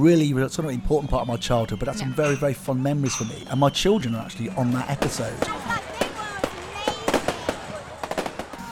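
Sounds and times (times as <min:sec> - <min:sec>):
speech: 0:00.0 - 0:05.9
fireworks crackling and popping in bursts: 0:04.4 - 0:08.7.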